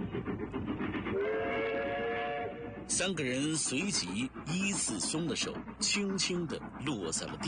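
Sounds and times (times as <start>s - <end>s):
train rumbling overhead near the Changbai Mountains: 0.0s - 7.4s
sustained train steam whistle: 1.1s - 2.7s
speech: 2.9s - 7.4s.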